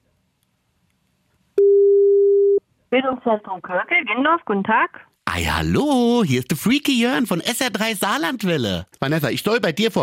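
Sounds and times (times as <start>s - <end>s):
mid-pitched telephone ringback tone during an outgoing call: 1.6s - 2.6s
speech: 2.9s - 10.0s.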